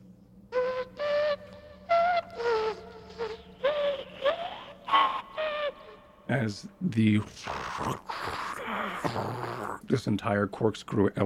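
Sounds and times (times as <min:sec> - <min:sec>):
buzzy off-key electronic whistle playing a halting tune: 0:00.6 - 0:04.0
speech: 0:06.3 - 0:11.2.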